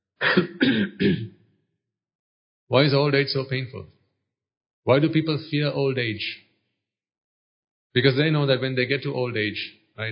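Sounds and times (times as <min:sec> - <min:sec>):
person clearing throat: 0:00.2 - 0:01.3
speech: 0:00.3 - 0:00.8, 0:02.7 - 0:04.0, 0:04.8 - 0:06.4, 0:07.9 - 0:10.0.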